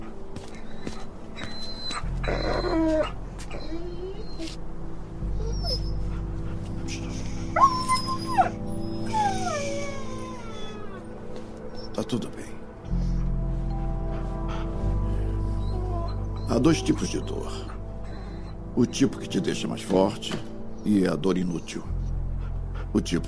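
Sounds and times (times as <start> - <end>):
injured dog whimpering and howling: 0.6 - 18.7
speech: 12.0 - 12.5, 16.5 - 17.7, 18.8 - 22.0, 22.9 - 23.2.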